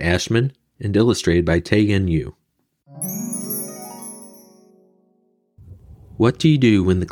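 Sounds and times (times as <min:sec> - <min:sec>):
speech: 0:00.0 - 0:02.4, 0:06.2 - 0:07.1
bright metallic page-turn signal chime: 0:03.0 - 0:05.1.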